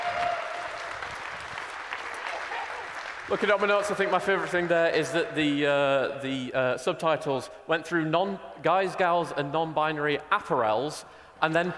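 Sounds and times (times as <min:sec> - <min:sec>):
crowd applauding: 0:00.0 - 0:05.0
speech: 0:03.3 - 0:11.7.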